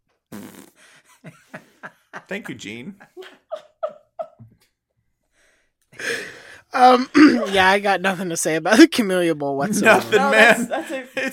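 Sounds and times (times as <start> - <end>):
sampled fart sound effect from a sampler: 0.3 - 0.8
laughter: 1.1 - 4.4, 9.6 - 11.3
speech: 2.3 - 3.1, 6.8 - 11.3.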